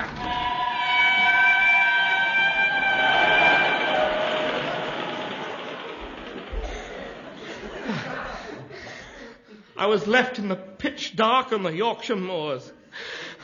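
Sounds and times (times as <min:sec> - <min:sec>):
train pulling away on the Yorkshire moors: 0:00.2 - 0:08.0
train whistle blowing on the Yorkshire moors: 0:00.4 - 0:06.4
laughter: 0:02.3 - 0:09.7
speech: 0:09.8 - 0:13.2.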